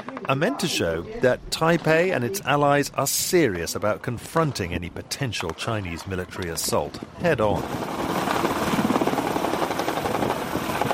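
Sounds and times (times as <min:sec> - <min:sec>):
speech: 0:00.3 - 0:08.5
military planes taking off and landing during a Taiwanese military drill: 0:03.5 - 0:10.9.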